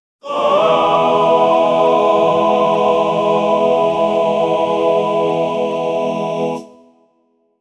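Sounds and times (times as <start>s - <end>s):
people cheering: 0.2s - 3.6s
choir singing: 0.2s - 7.0s.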